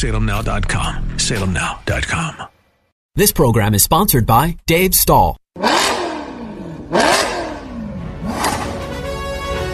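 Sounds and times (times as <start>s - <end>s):
speech: 0.0s - 2.5s, 3.2s - 5.8s
car engine revving: 5.6s - 9.6s.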